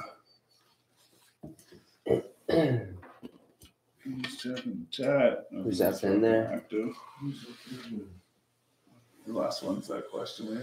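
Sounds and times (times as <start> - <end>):
harsh coughing after taking a dab of cannabis concentrate: 2.1 - 3.0
speech: 4.4 - 8.2, 9.3 - 10.6.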